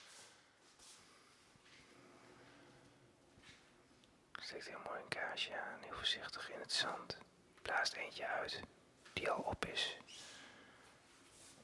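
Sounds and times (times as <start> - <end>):
soft whispering voices in a quiet monastery interior: 4.3 - 10.4
speech: 4.5 - 10.3.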